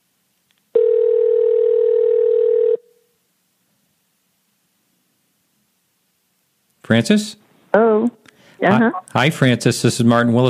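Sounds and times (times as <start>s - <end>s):
phone ringing with electronic tone: 0.8s - 2.9s
speech: 6.9s - 10.4s.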